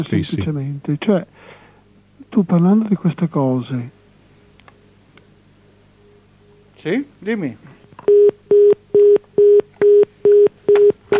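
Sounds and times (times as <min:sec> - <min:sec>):
speech: 0:00.0 - 0:01.6, 0:02.3 - 0:04.0, 0:06.8 - 0:08.3
telephone busy tone after caller hangs up: 0:08.1 - 0:11.1.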